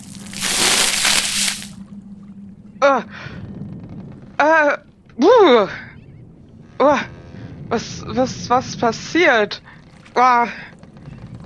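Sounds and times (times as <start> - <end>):
water poured from a bucket: 0.0 - 1.8
speech: 2.8 - 3.2, 4.4 - 5.9, 7.7 - 10.7.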